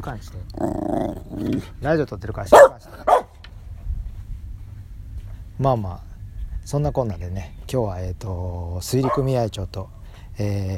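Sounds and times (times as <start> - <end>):
speech: 0.0 - 3.1, 5.6 - 10.7
dog barking at arriving neighbor: 2.5 - 3.3, 9.0 - 9.3.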